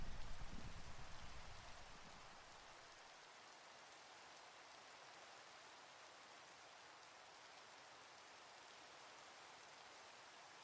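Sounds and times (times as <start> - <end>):
faint low rumble: 0.0 - 2.0
steady rain falling: 0.0 - 10.6.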